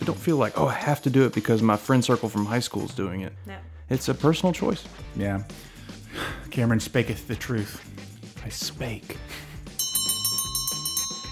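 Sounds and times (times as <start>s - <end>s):
speech: 0.1s - 9.5s
closing bell ringing: 9.8s - 11.2s.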